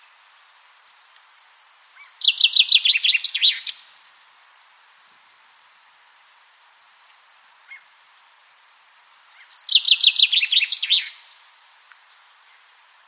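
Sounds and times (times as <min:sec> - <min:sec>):
common chaffinch Fringilla coelebs song: 0:00.0 - 0:04.0, 0:09.0 - 0:13.0
faint ticks: 0:01.0 - 0:01.5, 0:07.0 - 0:07.3, 0:11.8 - 0:12.6.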